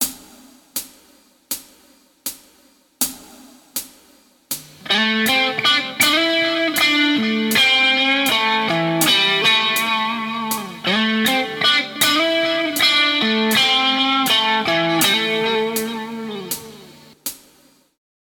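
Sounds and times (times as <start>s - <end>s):
guitar: 4.8s - 17.2s.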